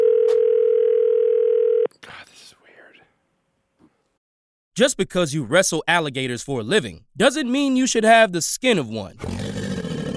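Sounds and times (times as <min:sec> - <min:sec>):
telephone dial tone while calling phone numbers: 0:00.0 - 0:01.9
speech: 0:04.8 - 0:09.6.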